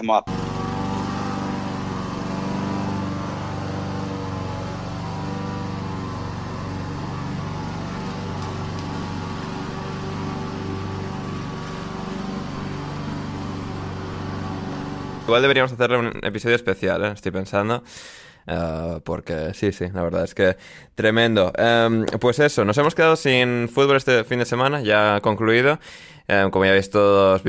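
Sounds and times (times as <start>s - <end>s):
speech: 0.0s - 0.5s, 15.3s - 27.4s
lawn mower engine droning: 0.3s - 15.7s.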